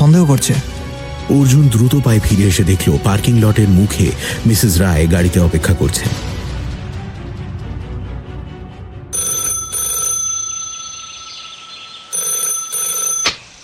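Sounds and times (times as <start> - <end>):
speech: 0.1 - 6.4
telephone with bright high electronic double ring: 9.1 - 13.6.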